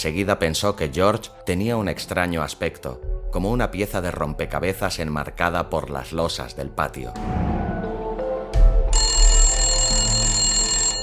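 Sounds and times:
speech: 0.0 - 7.5
telephone ringing with a metallic bell tone: 8.9 - 11.0.

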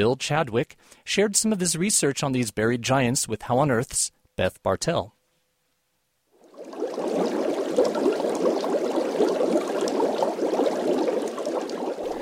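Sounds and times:
speech: 0.0 - 5.2
synthesized underwater bubbling made with audio software: 6.4 - 12.2.

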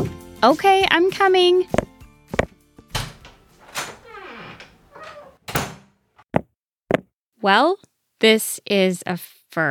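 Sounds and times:
speech: 0.4 - 1.8, 7.4 - 9.6
studio door being handled, sharp wooden thunks: 2.9 - 5.9
drawn-out creaking squeal of the studio door hinge: 3.0 - 5.5.

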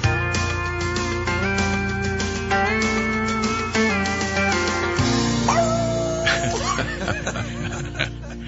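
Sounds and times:
steady music: 0.0 - 8.4
dog barking and whimpering: 5.4 - 7.0
laughter: 6.0 - 8.4.

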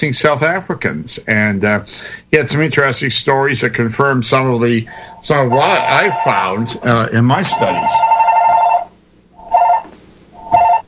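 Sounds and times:
speech: 0.0 - 8.1
telephone bell ringing: 5.3 - 10.8.

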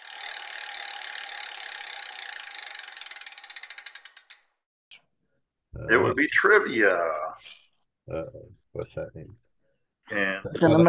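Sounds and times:
prize wheel spinning and clicking: 0.0 - 4.6
speech: 5.8 - 9.4, 10.1 - 10.8.

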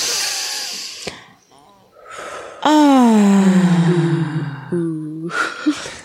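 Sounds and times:
deep belly breathing during a breathing exercise: 0.0 - 6.0
person moaning during a breathing exercise: 2.6 - 5.3.

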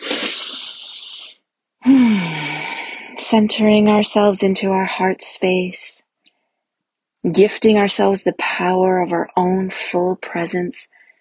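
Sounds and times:
deep conscious breath: 0.0 - 3.2
speech: 3.3 - 6.1, 7.2 - 11.0.

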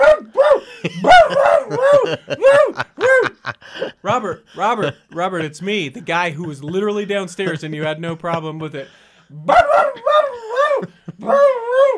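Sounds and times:
dog drawn-out yowling barks: 0.0 - 2.8, 9.5 - 10.8
laughter: 0.6 - 8.9
speech: 2.1 - 2.9, 4.1 - 11.9.

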